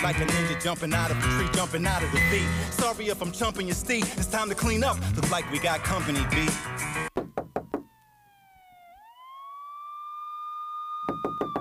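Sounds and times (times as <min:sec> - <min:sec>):
speech: 0:00.0 - 0:07.1
siren wailing: 0:04.4 - 0:11.5
loud sharp knocking on a door: 0:07.1 - 0:07.9, 0:11.1 - 0:11.5.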